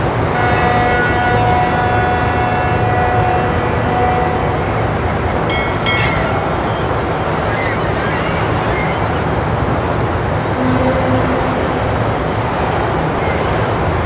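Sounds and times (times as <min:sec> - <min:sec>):
ship horns: 0:00.2 - 0:13.9
seagulls at sea: 0:05.9 - 0:09.3.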